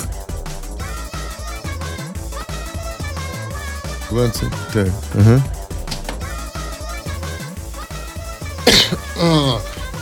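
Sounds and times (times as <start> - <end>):
steady music: 0.0 - 10.0
speech: 4.1 - 5.6, 8.7 - 9.7
single sharp cough: 8.6 - 10.0
brief voiced throat-like sound: 8.7 - 10.0.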